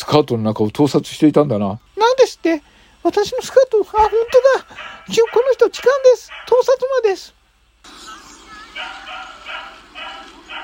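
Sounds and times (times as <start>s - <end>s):
speech: 0.0s - 8.2s
hum: 0.0s - 10.6s
dog barking in a park: 3.9s - 7.2s, 8.7s - 10.6s.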